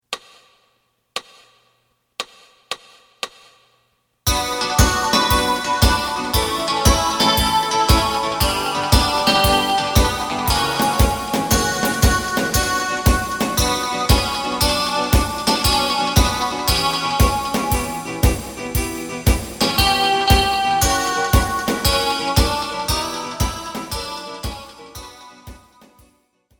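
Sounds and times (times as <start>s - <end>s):
bass in B minor: 4.3s - 25.1s.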